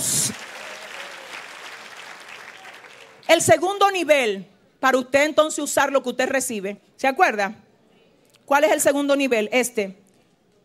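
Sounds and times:
audience applauding: 0:00.0 - 0:03.3
speech: 0:03.3 - 0:07.6, 0:08.5 - 0:10.0.

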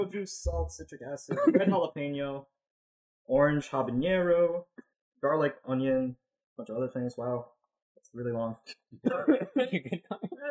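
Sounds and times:
speech: 0:00.0 - 0:02.6, 0:03.3 - 0:10.4
stifled cough after swallowing the wrong way: 0:01.3 - 0:01.8, 0:09.0 - 0:10.4.

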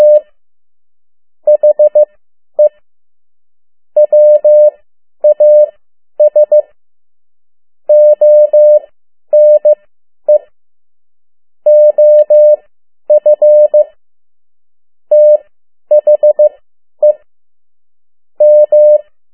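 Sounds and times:
Morse code tapped out as a steady mid-pitched tone: 0:00.0 - 0:00.2, 0:01.5 - 0:02.8, 0:04.0 - 0:06.7, 0:07.9 - 0:10.4, 0:11.7 - 0:13.8, 0:15.1 - 0:17.2, 0:18.4 - 0:19.0.

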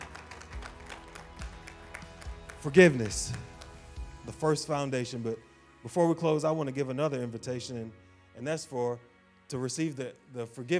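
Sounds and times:
crowd clapping in applause: 0:00.0 - 0:04.2
speech: 0:02.6 - 0:03.5, 0:04.2 - 0:10.7.

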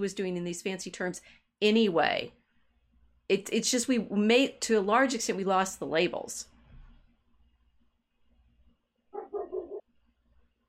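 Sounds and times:
speech: 0:00.0 - 0:02.4, 0:03.3 - 0:06.5
dog barking: 0:09.2 - 0:09.8.

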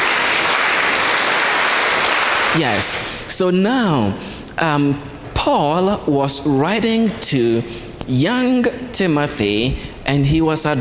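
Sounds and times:
group of children clapping a six-beat rhythm: 0:00.0 - 0:03.1
speech: 0:02.6 - 0:10.7.

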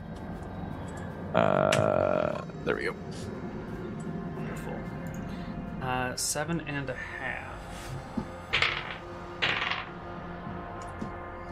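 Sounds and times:
speech: 0:01.3 - 0:02.1, 0:02.7 - 0:08.1
dice clattering across a hard tabletop: 0:08.5 - 0:10.0.

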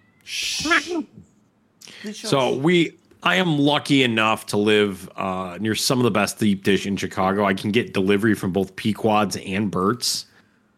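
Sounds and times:
cat screaming: 0:00.2 - 0:01.1
speech: 0:00.3 - 0:01.2, 0:02.0 - 0:10.3.

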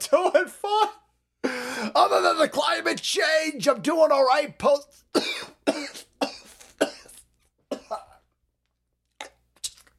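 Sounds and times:
speech: 0:00.1 - 0:01.0, 0:02.1 - 0:05.9
person coughing harshly: 0:05.2 - 0:08.2.

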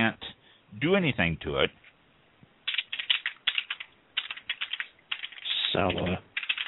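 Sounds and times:
speech: 0:00.8 - 0:01.9, 0:05.8 - 0:06.3
typing on a computer keyboard: 0:02.7 - 0:06.6.

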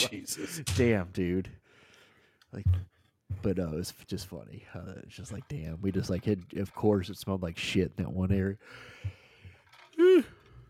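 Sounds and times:
speech: 0:00.0 - 0:01.6, 0:02.5 - 0:09.2, 0:10.1 - 0:10.4
person yawning: 0:10.0 - 0:10.5.

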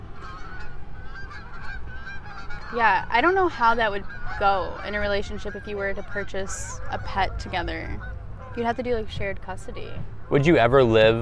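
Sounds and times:
geese-like birds honking in flight: 0:00.0 - 0:11.1
speech: 0:02.7 - 0:11.2.

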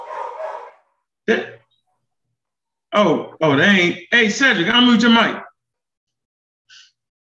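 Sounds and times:
dog barking: 0:00.0 - 0:00.9
speech: 0:01.3 - 0:01.6, 0:02.9 - 0:05.5.

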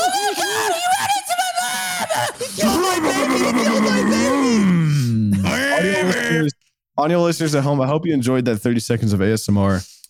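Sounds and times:
voice imitating children screaming after a car crash: 0:00.0 - 0:06.5
speech: 0:07.0 - 0:10.0.

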